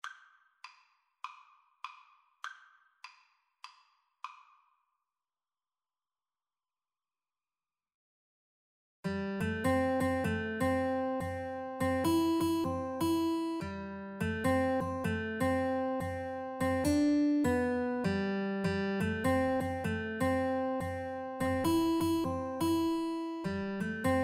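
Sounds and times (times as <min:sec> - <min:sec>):
guitar duet: 0:09.1 - 0:24.2.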